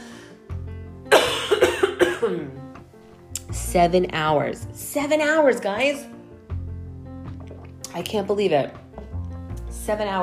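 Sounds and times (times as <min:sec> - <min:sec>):
harsh coughs trailing into a throat rasp: 0:01.1 - 0:02.6
speech: 0:02.2 - 0:02.6, 0:03.5 - 0:06.1, 0:07.9 - 0:08.8, 0:09.8 - 0:10.2.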